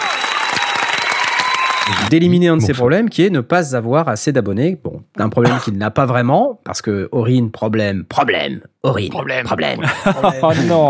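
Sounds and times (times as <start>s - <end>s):
crowd applauding: 0.0s - 2.6s
speech: 1.9s - 10.8s
laughter: 9.7s - 10.8s.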